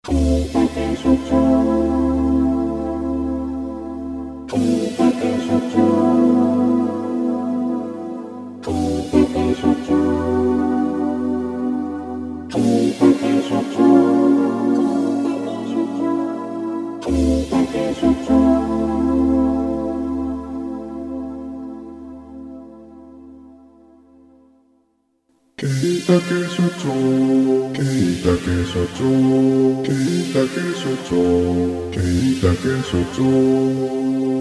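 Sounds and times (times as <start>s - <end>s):
V-Synth synthesizer: 0.0s - 24.8s, 25.6s - 34.3s.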